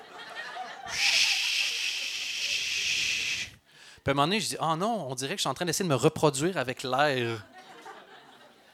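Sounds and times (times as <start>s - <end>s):
laughter: 0.0s - 2.9s, 7.4s - 8.7s
person imitating ocean waves with the mouth: 0.9s - 3.6s
speech: 4.0s - 7.5s.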